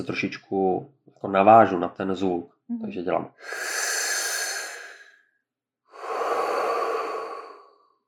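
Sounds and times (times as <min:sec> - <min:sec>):
speech: 0:00.0 - 0:03.9
deep deliberately audible breathing: 0:03.4 - 0:05.2, 0:05.9 - 0:07.9.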